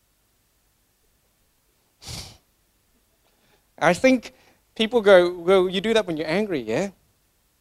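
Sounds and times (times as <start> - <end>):
sharp heavy exhale through flared nostrils: 2.0 - 2.4
speech: 3.8 - 7.0.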